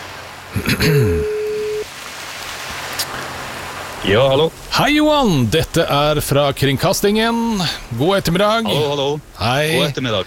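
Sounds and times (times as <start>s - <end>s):
speech: 0.5s - 1.4s, 4.0s - 10.2s
ringback tone from an outgoing phone call on air: 1.2s - 1.9s.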